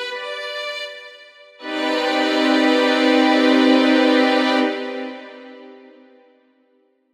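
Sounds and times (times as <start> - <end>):
minor major seventh chord: 1.6 - 6.1.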